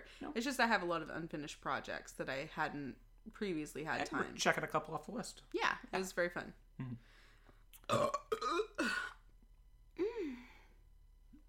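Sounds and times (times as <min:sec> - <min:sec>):
speech: 0:00.1 - 0:07.2, 0:07.9 - 0:09.1
loud voiced burps: 0:07.8 - 0:09.3.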